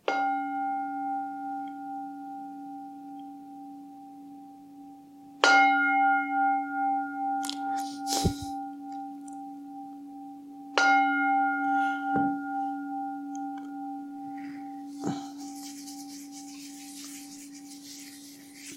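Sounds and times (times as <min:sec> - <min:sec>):
meditation gong struck with sustained metallic hum: 0:00.1 - 0:18.0
faint rustling: 0:14.4 - 0:18.7.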